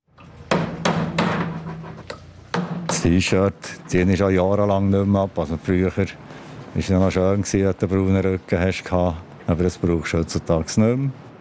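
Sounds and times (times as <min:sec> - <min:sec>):
construction site noise with a low hum: 0:00.1 - 0:11.3
sharp hammer blows at a construction site: 0:00.5 - 0:03.9
speech: 0:03.0 - 0:11.3.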